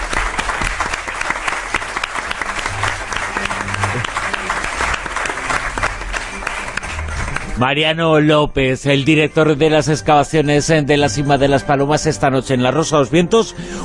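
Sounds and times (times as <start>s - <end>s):
audience applause after a talk: 0.0s - 7.7s
speech: 7.6s - 13.8s.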